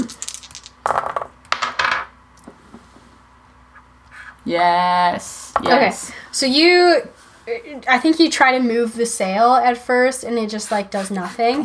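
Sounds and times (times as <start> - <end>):
dice rolling on a hard tabletop: 0.0 - 2.1
speech: 4.5 - 11.6.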